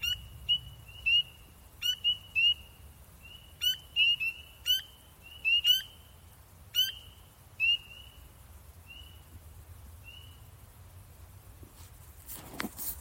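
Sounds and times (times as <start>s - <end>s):
spring peepers peeping in Maryland: 0.0s - 10.8s.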